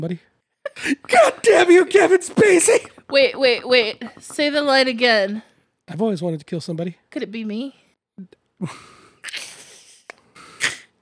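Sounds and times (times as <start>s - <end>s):
speech: 0.0s - 9.5s
heavy raspy breathing with huffs and gasps: 8.6s - 11.0s.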